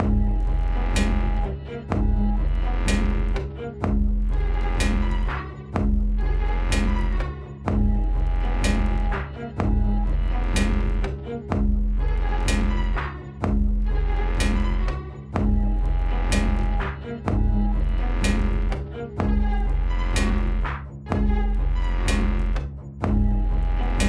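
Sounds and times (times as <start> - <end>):
underground music loop: 0.0 - 24.0.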